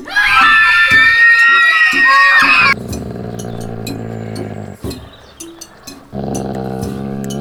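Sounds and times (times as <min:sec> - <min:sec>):
girls shrieking and shouting at a group home: 0:00.0 - 0:02.8.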